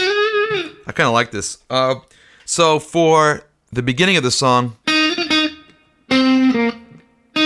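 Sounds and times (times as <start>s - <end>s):
electric guitar on neck pickup with tremolo, reverb and compression: 0.0s - 0.9s, 4.8s - 7.4s
speech: 0.9s - 4.8s.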